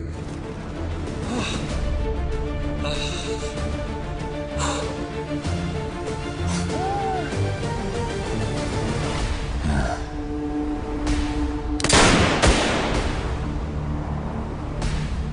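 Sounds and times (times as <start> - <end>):
steady drone: 0.0 - 15.3
blank gunshots fired during a police standoff: 11.8 - 13.3.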